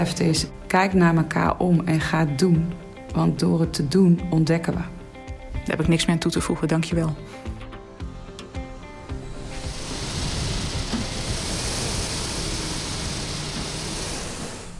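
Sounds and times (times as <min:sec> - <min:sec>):
speech: 0:00.0 - 0:05.0, 0:05.6 - 0:07.6
fading tones: 0:07.4 - 0:14.7
ski ergometer flywheel fan whirring: 0:07.7 - 0:14.7.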